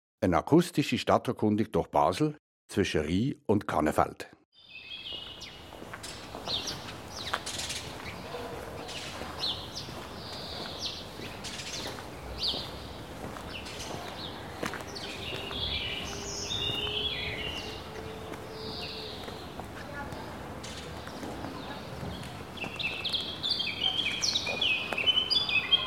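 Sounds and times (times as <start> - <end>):
speech: 0.2 - 4.4
birds singing and chirping: 4.6 - 25.8
soft footstep-like clicks: 5.1 - 16.9, 17.9 - 23.4.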